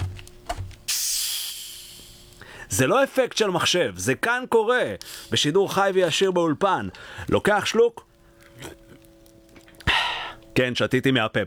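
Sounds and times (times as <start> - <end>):
soft handling knocks on a soda bottle: 0.0 - 0.9
hiss of a 1.5-litre lemon-lime zero-sugar carbonated soda bottle opening: 0.9 - 2.4, 5.0 - 5.4
speech: 2.7 - 8.8, 10.6 - 11.4.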